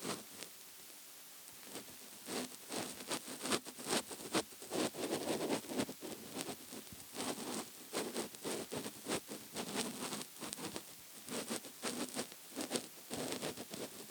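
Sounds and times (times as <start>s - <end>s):
scratching on a soft couch cushion: 1.7s - 14.0s.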